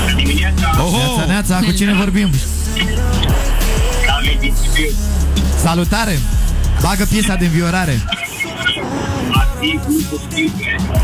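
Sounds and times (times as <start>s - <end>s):
car interior rumble over a phone line: 0.0s - 11.0s
road noise: 0.0s - 11.0s
speech: 1.4s - 3.6s, 4.2s - 11.0s.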